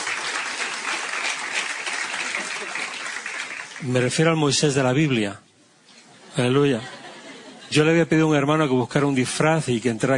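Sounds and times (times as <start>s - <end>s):
audience applause: 0.0s - 4.2s
laughter: 2.1s - 3.1s, 6.1s - 7.9s
speech: 3.8s - 5.5s, 6.4s - 7.0s, 7.7s - 10.1s.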